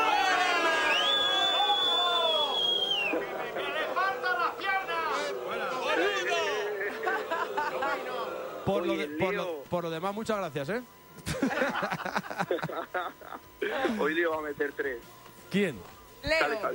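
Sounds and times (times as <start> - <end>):
shrill whistle: 0.0 - 3.2
large crowd booing: 0.0 - 9.2
laughter: 2.1 - 8.7, 11.2 - 14.2
speech: 8.7 - 16.7.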